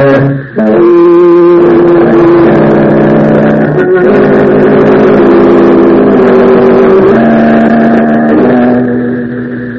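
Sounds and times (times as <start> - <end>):
car engine revving and pulling away through the gears: 0.0 - 9.7.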